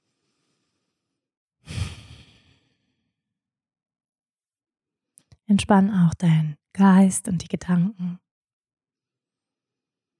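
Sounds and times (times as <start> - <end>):
soft breathy exhale during a guided meditation: 0.0 - 3.0
speech: 5.5 - 8.2.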